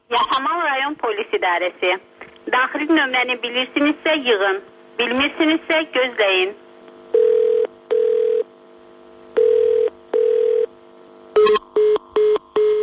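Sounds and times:
speech: 0:00.1 - 0:06.6
telephone ringing tones of a call to a district police department line: 0:07.1 - 0:08.5, 0:09.4 - 0:10.7, 0:11.4 - 0:12.8.

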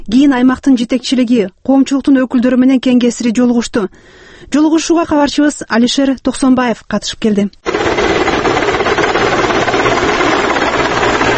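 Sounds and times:
speech: 0:00.1 - 0:07.9
helicopter engine roar: 0:07.7 - 0:11.3.

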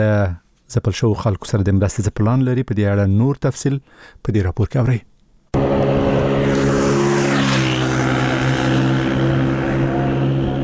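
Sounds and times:
speech: 0:00.0 - 0:05.9
old motorcycle engine roaring while ridden very fast: 0:05.6 - 0:10.6.

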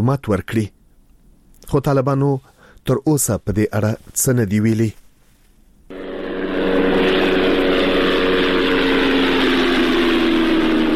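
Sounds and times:
speech: 0:00.0 - 0:00.8, 0:01.6 - 0:05.0
unmanned drone aircraft engine and propeller droning overhead in Ghazni province Afghanistan: 0:05.9 - 0:10.9.

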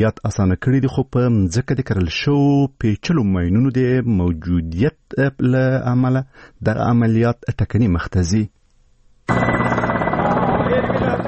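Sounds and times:
speech: 0:00.0 - 0:08.6
military combat helicopters flying overhead in Marjah, Afghanistan: 0:09.3 - 0:11.2.

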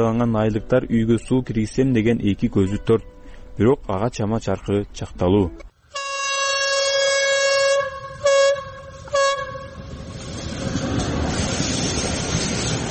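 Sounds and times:
speech: 0:00.0 - 0:05.7
train horn blaring a loud steady chord: 0:05.9 - 0:10.1
train passing near a village: 0:06.0 - 0:12.9.

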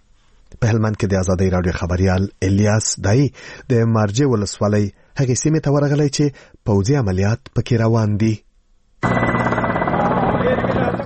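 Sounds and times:
speech: 0:00.6 - 0:08.4
military combat helicopters flying overhead in Helmand during a military operation: 0:09.0 - 0:11.0.

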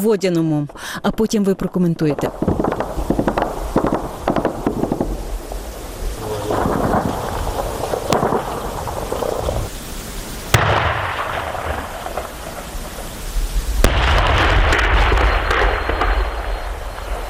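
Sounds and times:
speech: 0:00.0 - 0:02.8
shelling near a village in an evening battle: 0:00.7 - 0:17.2
gunfire between Ukrainian marines and enemy forces near a village: 0:02.3 - 0:05.2, 0:08.0 - 0:09.6, 0:10.6 - 0:12.6, 0:13.8 - 0:16.7.

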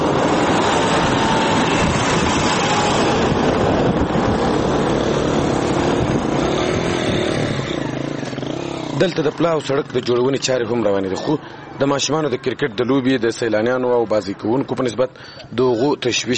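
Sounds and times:
mixed traffic of army tanks, rickshaws and cars: 0:00.0 - 0:16.3
speech: 0:09.0 - 0:16.3.

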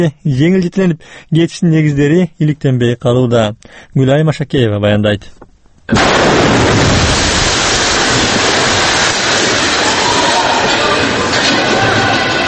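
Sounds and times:
speech: 0:00.0 - 0:07.1
deafening explosion with dense roaring rumble: 0:05.9 - 0:12.4.

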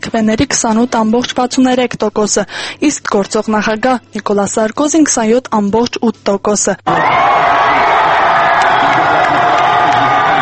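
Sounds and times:
speech: 0:00.0 - 0:07.6
thousands of people cheering election results outside a party office: 0:06.9 - 0:10.3.

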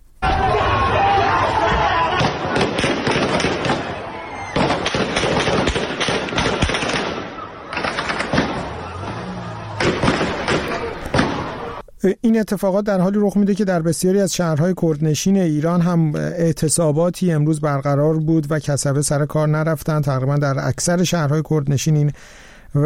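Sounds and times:
protesters shouting and clamoring: 0:00.2 - 0:05.0, 0:06.8 - 0:11.8
gunfire during street clashes with protesters in Paveh, Iran: 0:02.1 - 0:11.8
speech: 0:12.0 - 0:22.8.

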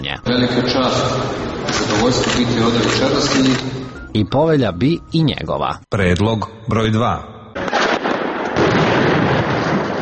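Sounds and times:
speech: 0:00.2 - 0:07.3
gunfire shooting on all sides: 0:07.6 - 0:10.0
sharp gunshot bangs: 0:07.6 - 0:10.0.

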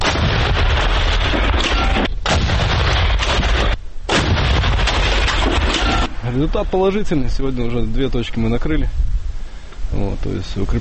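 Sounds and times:
Rapira anti-tank cannon firing at range: 0:00.0 - 0:07.0
speech: 0:06.4 - 0:09.1, 0:09.9 - 0:10.8.

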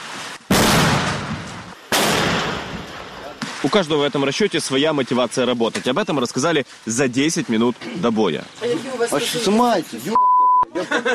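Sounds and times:
mortar shots firing during an assault near Ivanovskoye by the road to Bakhmut: 0:00.5 - 0:03.8
speech: 0:03.6 - 0:11.1
laughter: 0:10.7 - 0:11.1.

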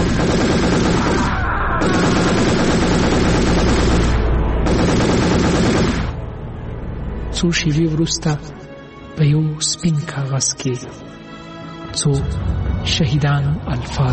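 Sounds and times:
machine-gun bursts at a small military post: 0:00.0 - 0:06.2
speech: 0:07.4 - 0:11.2, 0:12.0 - 0:14.1.

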